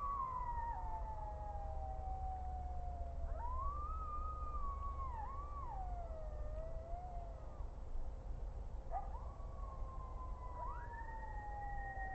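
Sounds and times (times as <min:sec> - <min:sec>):
coyotes howling on an audio monitor: 0:00.0 - 0:07.7, 0:08.9 - 0:12.1.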